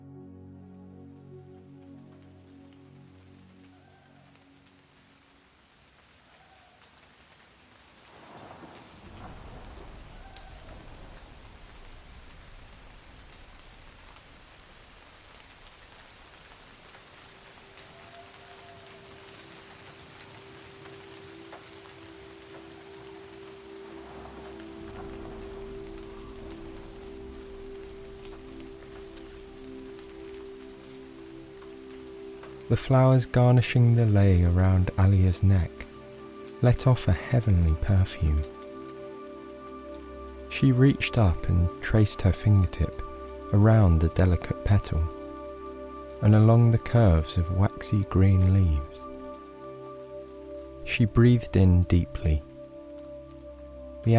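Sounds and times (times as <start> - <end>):
steady dense rain pouring: 0.6 - 54.1
deep rolling rumbles of thunder: 8.1 - 14.0, 23.8 - 29.1
speech: 32.7 - 35.9, 36.6 - 38.5, 40.6 - 42.8, 43.5 - 45.2, 46.2 - 49.0, 51.0 - 52.5.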